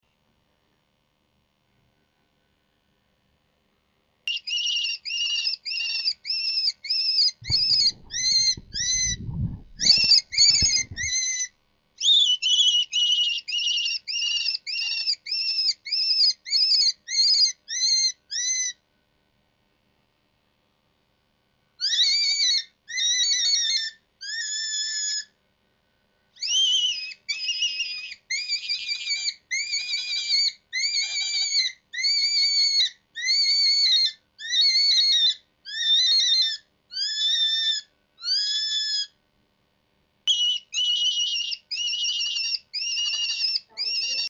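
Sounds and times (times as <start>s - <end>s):
cottontail rabbit distress cry: 4.3s - 18.8s, 21.8s - 25.3s, 26.4s - 39.2s, 40.3s - 44.2s.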